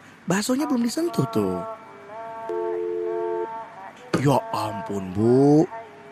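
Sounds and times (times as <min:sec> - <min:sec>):
speech: 0:00.3 - 0:01.8, 0:04.2 - 0:05.8
phone ringing with electronic ringtone: 0:02.5 - 0:03.6.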